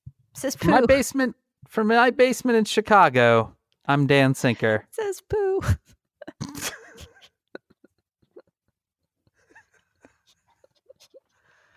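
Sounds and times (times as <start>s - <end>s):
speech: 0.4s - 6.6s
puppy in its pen yelping and whining: 9.4s - 11.7s.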